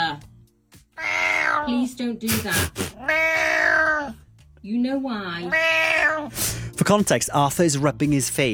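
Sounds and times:
cat meowing: 0.9 - 4.2, 5.4 - 6.3
speech: 1.6 - 3.1, 4.6 - 8.5
rough breathy bursts: 2.3 - 3.0, 6.4 - 6.7.

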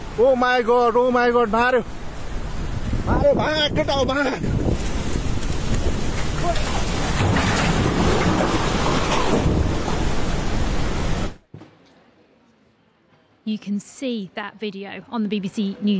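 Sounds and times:
floodwater in Nepal rushing between hillsides: 0.0 - 11.4
speech: 0.2 - 2.0, 3.2 - 4.6, 6.4 - 6.7, 13.5 - 15.9.

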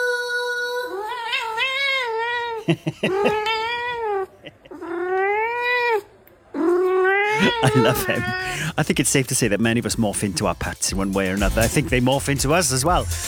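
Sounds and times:
cat meowing in response to its sung name: 1.0 - 8.6
laughter: 2.7 - 3.5, 7.3 - 8.9, 11.6 - 12.4
speech: 2.7 - 3.6, 7.6 - 13.2.

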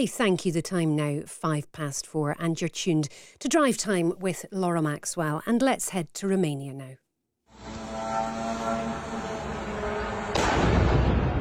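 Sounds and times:
speech: 0.0 - 7.0
Russian drone engine humming: 7.5 - 10.8
Russian drone exploding on the tenth floor of a block of flats: 9.7 - 11.4.

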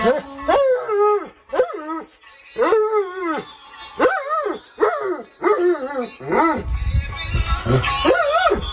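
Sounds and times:
long-haired German Shepherd barking and howling along to a song: 0.0 - 8.7
song chorus: 6.7 - 8.7.

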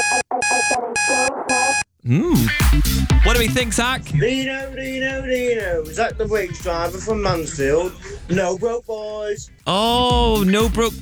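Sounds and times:
alarm beeping in sharp high bursts: 0.0 - 10.6
speech: 2.1 - 11.0
song playing at a lower pitch: 2.3 - 11.0.

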